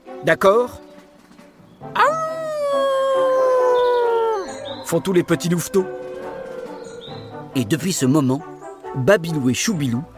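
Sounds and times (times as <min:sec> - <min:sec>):
speech: 0:00.2 - 0:00.8, 0:04.9 - 0:06.0, 0:07.6 - 0:10.1
cub scout leader howling like a wolf: 0:02.0 - 0:07.8.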